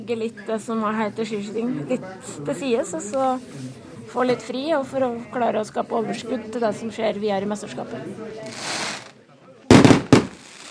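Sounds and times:
speech: 0:00.0 - 0:08.9
faint murmur of noise: 0:00.0 - 0:10.6
loud fireworks bangs with crackling tails: 0:08.5 - 0:09.1, 0:09.7 - 0:10.6.

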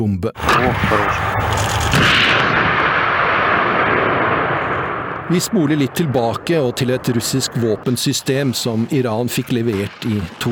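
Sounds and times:
speech: 0:00.0 - 0:02.9, 0:05.3 - 0:10.4
air-defense system firing a missile during exercises: 0:00.4 - 0:10.4.

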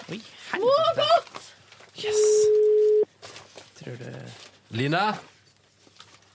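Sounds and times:
speech: 0:00.1 - 0:00.4, 0:03.9 - 0:05.3
telephone ringback tone: 0:02.3 - 0:03.0.

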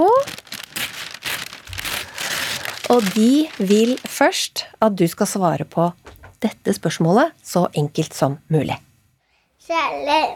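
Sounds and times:
red gift wrapping paper on a birthday present crinkling and rustling open: 0:00.0 - 0:04.7
speech: 0:02.9 - 0:08.9, 0:09.6 - 0:10.3.

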